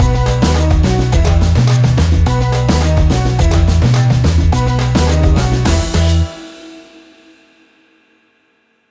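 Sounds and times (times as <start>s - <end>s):
African reggae fusion music stinger: 0.0s - 6.7s.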